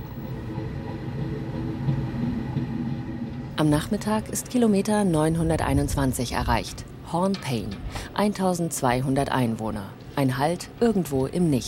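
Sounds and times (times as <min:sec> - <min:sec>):
train rolling along the tracks: 0:00.0 - 0:08.0
speech: 0:03.6 - 0:11.6.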